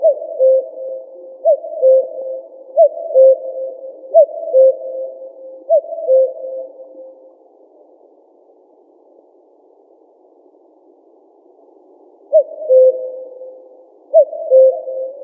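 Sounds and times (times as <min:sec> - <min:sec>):
common cuckoo calling two-note cu-coo: 0:00.0 - 0:06.9, 0:12.3 - 0:15.2.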